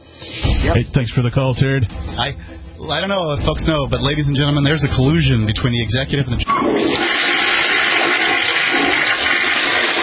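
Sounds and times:
speech: 0:00.7 - 0:07.4
toilet flush sound effect played from a button: 0:06.4 - 0:10.0.

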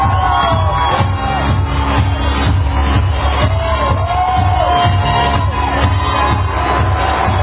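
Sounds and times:
high whoops and shouts from rally crowd: 0:00.0 - 0:01.5, 0:03.2 - 0:07.4
massive rally crowd roaring and cheering: 0:00.0 - 0:07.4.

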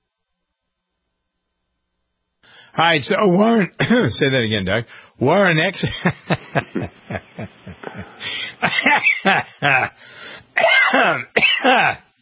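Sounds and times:
speech: 0:02.7 - 0:12.1
laughter: 0:05.8 - 0:10.0
person hacking and coughing to clear the throat: 0:07.7 - 0:10.0, 0:10.6 - 0:12.1
person clearing the throat: 0:10.6 - 0:12.1.

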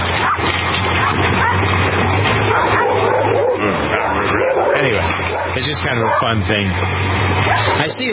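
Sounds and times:
dog barking and yipping at a dog pool party: 0:00.2 - 0:06.4, 0:07.4 - 0:08.0
speech: 0:05.8 - 0:08.1.

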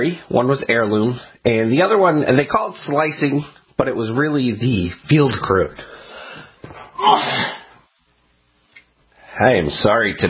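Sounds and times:
speech: 0:00.0 - 0:05.9, 0:06.7 - 0:07.6, 0:09.4 - 0:10.2
person sneezing: 0:06.8 - 0:07.8.

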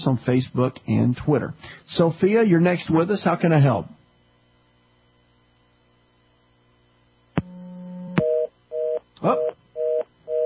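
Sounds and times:
speech: 0:00.0 - 0:04.0, 0:09.2 - 0:09.4
phone line click of a dropped call: 0:07.4 - 0:09.0
steady low dial tone: 0:07.4 - 0:10.4.

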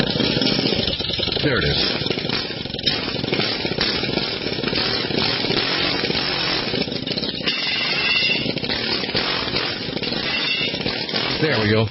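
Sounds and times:
pneumatic air hammer loosening brake rotor: 0:00.0 - 0:11.8
speech: 0:01.4 - 0:02.1.

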